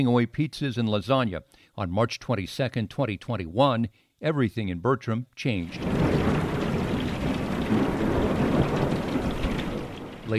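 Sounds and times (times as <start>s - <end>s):
speech: 0.0s - 6.2s
deep continuous rumble of thunder in Bertram: 5.7s - 10.3s
heavy rain in a severe thunderstorm in Bertram: 5.7s - 10.3s.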